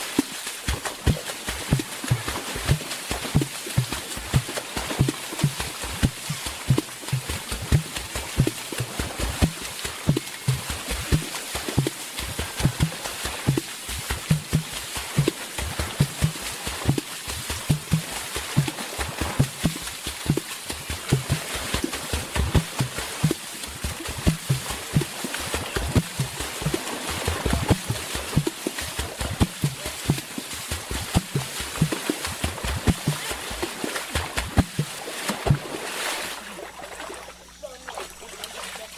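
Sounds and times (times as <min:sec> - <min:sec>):
hands striking the water surface in rhythmic water drumming: 0:00.0 - 0:38.9.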